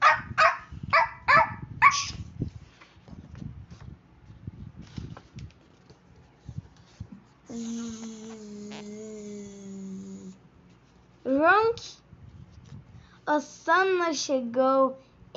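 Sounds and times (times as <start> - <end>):
dog barking: 0.0 - 2.2
speech: 13.4 - 15.3.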